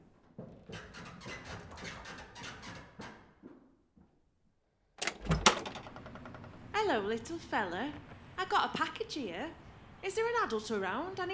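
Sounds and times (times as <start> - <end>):
door opened with a sharp latch click: 5.0 - 6.6
speech: 6.9 - 11.3.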